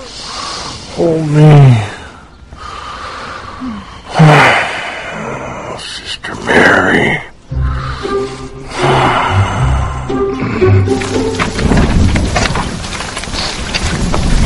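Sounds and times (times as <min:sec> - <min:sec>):
steady rain: 0:00.0 - 0:14.4
speech: 0:01.0 - 0:01.9
soft tonal music: 0:07.3 - 0:12.6
thunder: 0:11.4 - 0:14.4.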